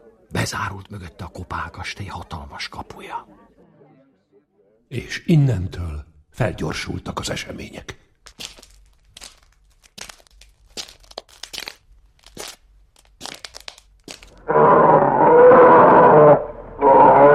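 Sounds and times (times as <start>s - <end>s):
speech: 0.4s - 3.5s, 4.9s - 8.5s
crunching and crackling: 8.1s - 14.5s
loud deep bear growl: 14.4s - 17.3s.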